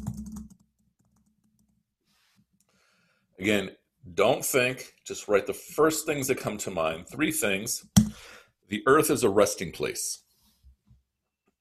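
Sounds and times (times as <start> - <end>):
typing on a computer keyboard: 0.0 - 1.7
speech: 3.4 - 10.2.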